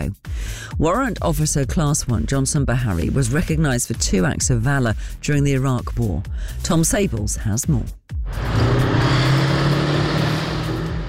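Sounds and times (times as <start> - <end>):
speech: 0.0 - 8.5
old Warrior armoured vehicle engine droning while driving laps around an arena in Dorset: 8.3 - 11.0.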